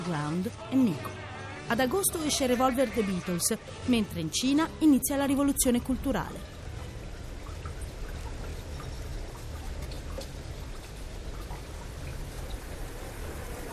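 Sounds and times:
heavy rain pouring: 0.0s - 13.7s
speech: 0.1s - 6.6s.

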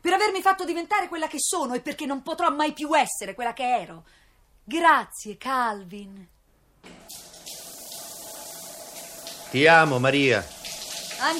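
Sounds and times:
speech: 0.2s - 7.2s, 9.5s - 10.6s, 11.2s - 11.3s
shower water running: 6.9s - 11.3s.

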